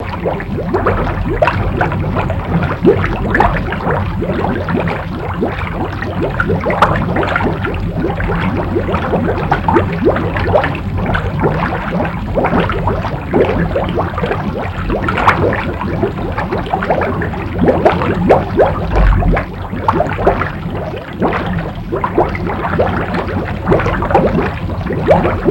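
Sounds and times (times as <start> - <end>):
heavy bubbling: 0.0 - 25.4.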